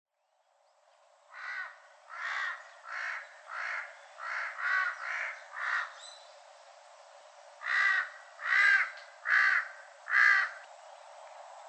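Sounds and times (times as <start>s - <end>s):
large-billed crow giving harsh nasal caws on Ishigaki Japan: 1.3s - 6.0s, 7.6s - 10.6s.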